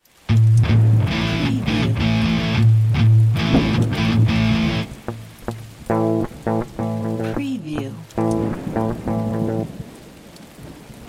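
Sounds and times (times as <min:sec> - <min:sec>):
power chords on two distorted electric guitars: 0:00.3 - 0:09.8.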